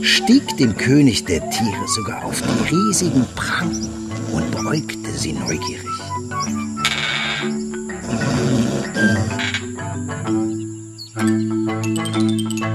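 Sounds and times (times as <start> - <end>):
speech: 0.0 - 6.6, 8.1 - 9.6, 11.2 - 11.4
steady musical drone: 0.0 - 11.5
higher chiming tones: 0.0 - 12.7
lion dozing in the midday sun growling: 1.2 - 9.8.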